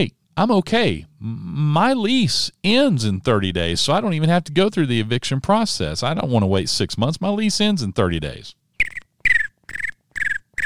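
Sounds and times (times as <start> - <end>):
speech: 0.0 - 8.9
crickets chirping: 8.8 - 10.6.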